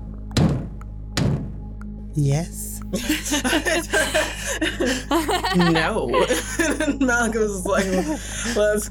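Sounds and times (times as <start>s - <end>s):
low steady hum: 0.0s - 8.8s
heavy knocks on a door: 0.4s - 1.6s
speech: 2.2s - 8.8s
laughter: 2.9s - 8.8s.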